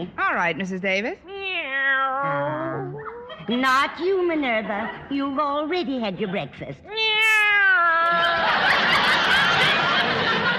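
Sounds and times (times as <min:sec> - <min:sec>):
speech: 0:00.0 - 0:02.9, 0:03.5 - 0:07.0
female house cat meowing: 0:01.3 - 0:03.3, 0:06.9 - 0:08.2
laughter: 0:02.3 - 0:05.3, 0:08.0 - 0:10.5.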